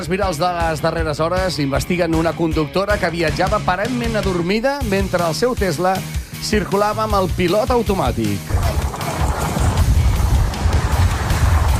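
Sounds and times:
speech: 0:00.0 - 0:08.8
road and engine noise inside a car at highway speed: 0:08.5 - 0:11.7
wind hiss: 0:08.5 - 0:11.7.

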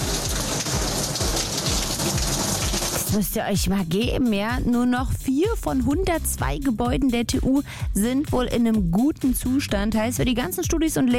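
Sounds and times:
water pouring down inside a leaking university physics building: 0:00.0 - 0:03.3
speech: 0:03.1 - 0:11.1.

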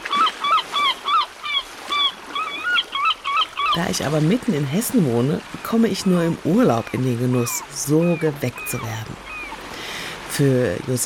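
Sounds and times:
seagulls squawking: 0:00.0 - 0:04.4, 0:05.5 - 0:09.8
speech: 0:03.8 - 0:09.3, 0:10.4 - 0:11.0.

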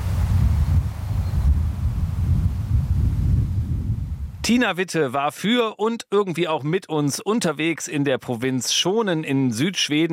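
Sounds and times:
wind in grasses: 0:00.0 - 0:04.6
speech: 0:04.5 - 0:10.1.

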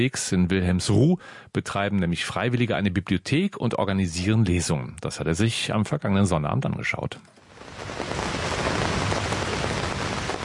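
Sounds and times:
speech: 0:00.0 - 0:08.1
heavy rain on the thin canopy of a small folding pavilion: 0:07.4 - 0:10.4.

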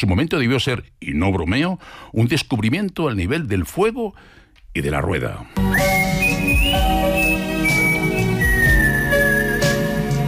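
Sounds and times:
speech: 0:00.0 - 0:06.0
instrumental backing music: 0:05.6 - 0:10.2
man whistling a slow melody: 0:05.6 - 0:10.2.

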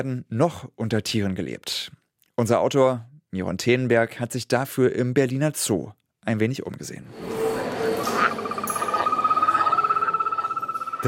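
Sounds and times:
speech: 0:00.0 - 0:07.4, 0:08.1 - 0:08.5
three-striped poison frog trilling: 0:07.2 - 0:11.0.

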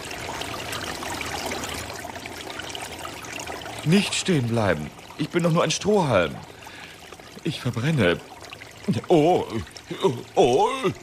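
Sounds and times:
brook water rushing: 0:00.0 - 0:11.0
speech: 0:03.8 - 0:06.5, 0:07.4 - 0:08.3, 0:08.9 - 0:11.0.

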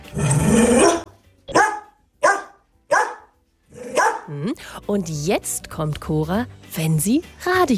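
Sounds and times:
female dog barking: 0:00.8 - 0:04.3
speech: 0:04.3 - 0:07.7.

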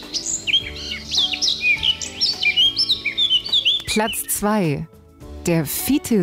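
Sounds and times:
Eurasian blackcap singing a warbling song: 0:00.0 - 0:04.9
speech: 0:03.9 - 0:06.2.

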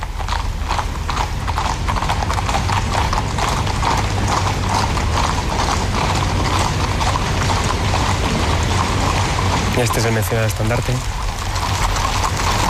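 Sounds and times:
many horses' hooves clip-clopping on pavement in a parade: 0:00.0 - 0:12.6
speech: 0:09.8 - 0:11.2.

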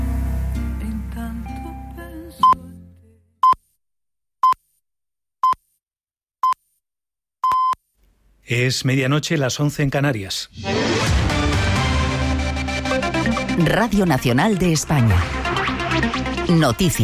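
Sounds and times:
music: 0:00.0 - 0:03.4, 0:10.6 - 0:17.0
electronic telephone beeps: 0:07.4 - 0:07.8
speech: 0:08.5 - 0:10.9, 0:13.6 - 0:17.0.

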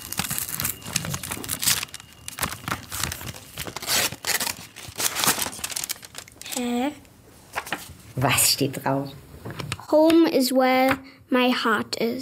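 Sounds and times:
golden paper envelope crinkling and tearing open: 0:00.0 - 0:06.8
speech: 0:08.2 - 0:09.2, 0:09.9 - 0:12.2.

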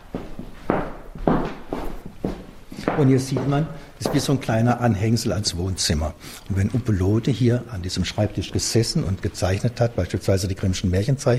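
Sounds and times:
footsteps walking through an old artist's house: 0:00.0 - 0:04.6, 0:07.9 - 0:10.8
speech: 0:03.0 - 0:11.3.

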